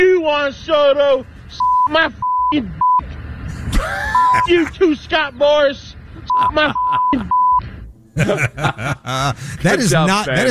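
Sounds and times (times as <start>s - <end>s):
speech: 0.0s - 3.1s, 3.8s - 7.4s, 8.2s - 10.4s
high-pitched censor bleep over profanity: 1.6s - 3.0s, 4.1s - 4.5s, 6.3s - 7.6s
laughter: 3.5s - 4.8s, 6.2s - 7.4s, 8.2s - 10.4s.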